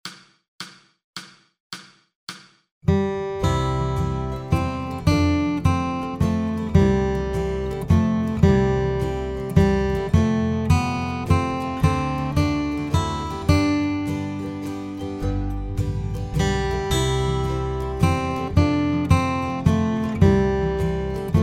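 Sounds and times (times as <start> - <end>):
guitar: 2.8 - 21.4.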